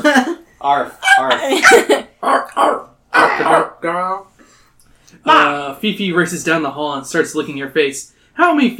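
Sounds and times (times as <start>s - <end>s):
speech: 0.6s - 4.3s, 5.1s - 8.7s
person imitating dog barking: 1.0s - 3.8s.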